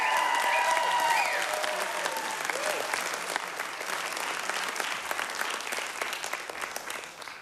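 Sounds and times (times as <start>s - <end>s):
whistles and cheers: 0.0s - 3.0s
large audience applause: 0.0s - 7.4s.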